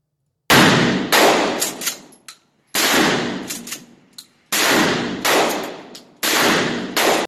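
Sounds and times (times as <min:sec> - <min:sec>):
gunshots at a shooting range: 0:00.5 - 0:02.1, 0:02.8 - 0:03.9, 0:04.5 - 0:07.2.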